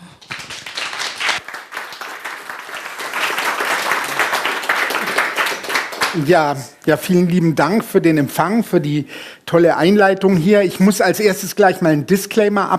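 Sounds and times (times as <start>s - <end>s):
audience applause: 0.0s - 6.2s
speech: 6.2s - 12.7s.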